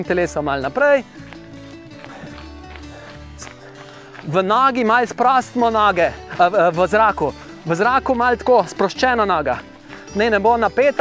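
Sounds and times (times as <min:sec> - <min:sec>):
speech: 0:00.0 - 0:01.3, 0:04.2 - 0:10.9
footsteps of someone jogging in place: 0:00.0 - 0:10.9.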